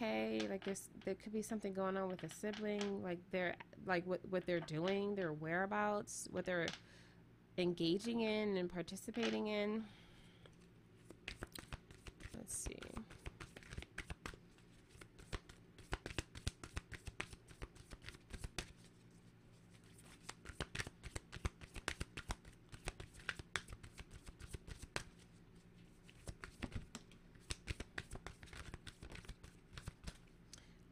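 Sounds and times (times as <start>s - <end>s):
speech: 0.6s - 7.0s, 7.6s - 10.0s, 12.5s - 13.2s
deck of spiritual reading cards being shuffled: 11.0s - 19.1s, 19.7s - 30.3s.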